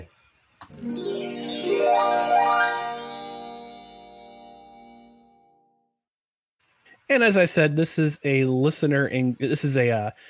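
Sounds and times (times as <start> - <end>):
speech: 0.0 - 2.2, 7.1 - 10.2
shimmering chime: 0.6 - 5.6.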